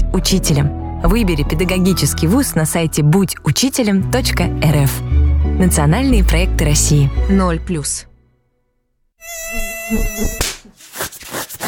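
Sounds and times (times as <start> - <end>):
speech: 0.2 - 8.1, 9.9 - 10.5
mosquito buzzing: 9.2 - 10.7.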